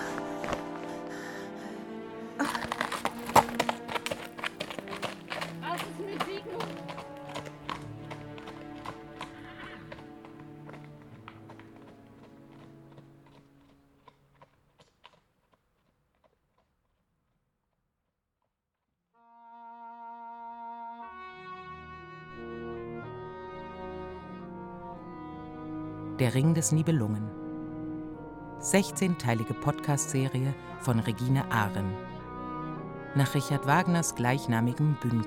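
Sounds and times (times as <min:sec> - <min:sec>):
horse hooves clip-clopping: 0:00.1 - 0:01.1, 0:02.4 - 0:17.4
horse neighing: 0:09.2 - 0:09.9
speech: 0:26.2 - 0:27.4, 0:28.6 - 0:32.1, 0:33.1 - 0:35.2.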